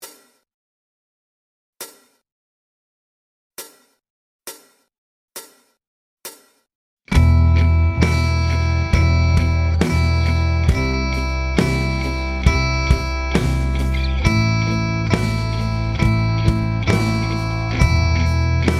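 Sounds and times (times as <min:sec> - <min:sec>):
slow electric guitar: 0:07.1 - 0:18.7.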